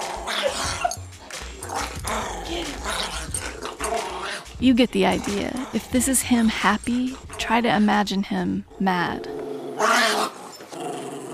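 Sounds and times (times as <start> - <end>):
dog yips: 0.0 - 1.0, 1.6 - 4.5, 9.8 - 10.7
two dogs in playful scuffle: 0.0 - 7.5
two dogs growling and snarling while wrestling: 0.0 - 7.9, 8.7 - 11.3
speech: 4.6 - 9.3.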